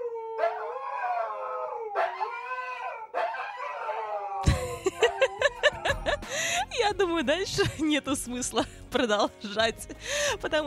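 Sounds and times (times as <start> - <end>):
Siberian husky howling: 0.0 - 6.1
laughter: 4.4 - 6.9
speech: 6.9 - 10.6.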